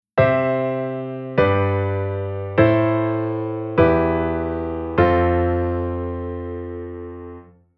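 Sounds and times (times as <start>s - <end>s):
secondary dominant chord pattern: 0.2s - 7.6s.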